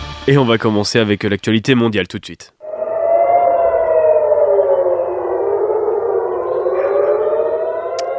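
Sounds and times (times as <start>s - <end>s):
speech: 0.3s - 2.6s
air raid warning siren wailing: 2.6s - 8.1s.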